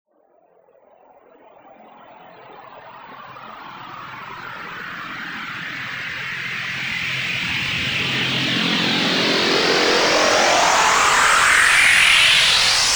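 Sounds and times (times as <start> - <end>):
riser drone in E: 3.3 - 12.9.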